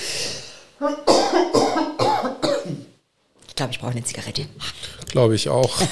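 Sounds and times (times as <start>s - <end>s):
sharp intake of breath: 0.0s - 0.8s
speech: 0.8s - 1.4s, 3.6s - 5.9s
person coughing hoarsely in a fit: 1.0s - 2.9s.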